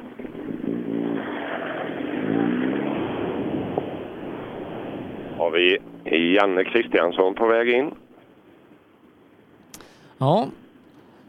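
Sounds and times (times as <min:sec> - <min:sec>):
rally car engine revving: 0:00.0 - 0:08.1
speech: 0:05.5 - 0:08.0, 0:10.2 - 0:10.6.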